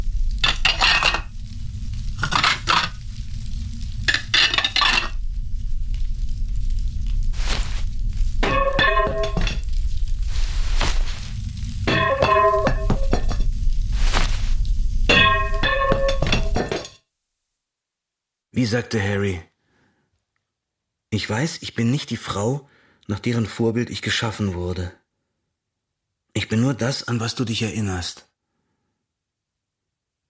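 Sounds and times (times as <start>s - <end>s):
steady low hum: 0.0s - 16.9s
plates and dishes clattering: 0.4s - 1.3s, 2.2s - 3.0s, 4.1s - 5.2s, 8.4s - 9.6s, 11.9s - 13.5s, 15.1s - 17.0s
speech: 18.6s - 19.5s, 21.1s - 25.0s, 26.4s - 28.3s.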